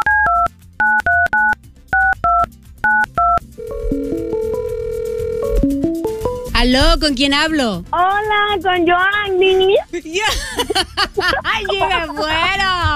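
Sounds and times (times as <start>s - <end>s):
telephone keypad tones as a number is dialed: 0.0s - 5.5s
speech: 6.6s - 12.9s
laughter: 10.0s - 12.8s.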